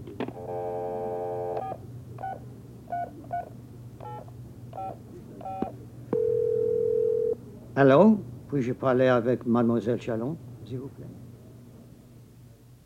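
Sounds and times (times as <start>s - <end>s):
telephone dial tone: 0.3s - 1.8s, 6.2s - 7.4s
speech: 7.8s - 11.2s.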